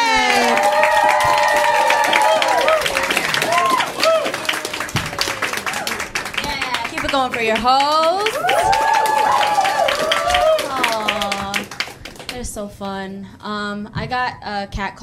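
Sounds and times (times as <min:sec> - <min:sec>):
audience whooping and shouting: 0:00.0 - 0:06.2, 0:08.2 - 0:11.4
large audience clapping and cheering at a comedy show: 0:00.0 - 0:12.5
speech: 0:07.3 - 0:08.4, 0:12.6 - 0:15.0.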